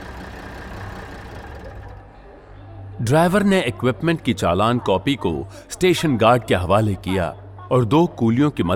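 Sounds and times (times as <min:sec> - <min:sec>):
heavy truck carrying a container of equipment, engine rumbling: 0:00.0 - 0:02.2
speech: 0:03.0 - 0:08.7.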